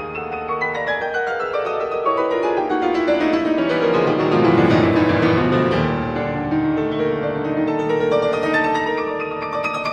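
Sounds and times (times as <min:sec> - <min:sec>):
rich piano music with full chords: 0:00.0 - 0:09.9.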